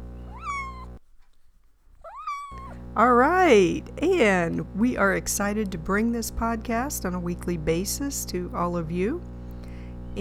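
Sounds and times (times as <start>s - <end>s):
domestic cat meowing: 0.2s - 1.0s, 2.0s - 2.8s
speech: 3.0s - 9.3s.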